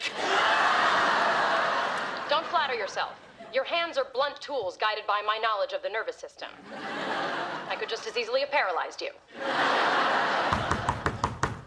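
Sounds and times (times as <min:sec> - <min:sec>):
laughter: 0:00.0 - 0:03.6, 0:06.6 - 0:08.3, 0:09.3 - 0:11.2
speech: 0:02.7 - 0:07.0, 0:07.8 - 0:10.2
firm knocking on a door: 0:10.5 - 0:11.6.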